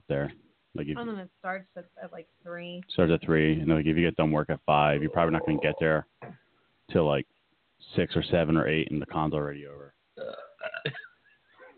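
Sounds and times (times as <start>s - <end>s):
speech: 0.1s - 11.1s
person letting out a drawn-out croaky burp: 5.0s - 5.9s, 10.2s - 11.1s.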